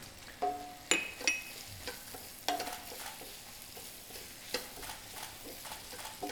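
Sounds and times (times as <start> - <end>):
chopped ingredients sizzling while stir-fried in a frying pan: 0.0 - 6.3.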